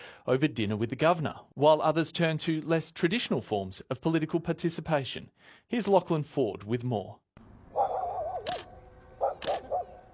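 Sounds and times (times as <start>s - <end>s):
speech: 0.2s - 7.2s
dogs yelping and whining while having portraits taken: 7.8s - 10.1s.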